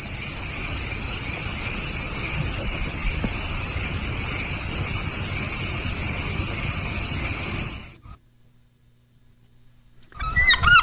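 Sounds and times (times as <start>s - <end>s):
dense chorus of crickets chirping in the evening: 0.0s - 8.0s.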